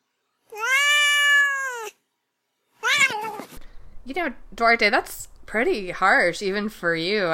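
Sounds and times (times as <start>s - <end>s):
domestic cat meowing: 0.5s - 2.0s, 2.8s - 3.6s
speech: 4.1s - 7.3s.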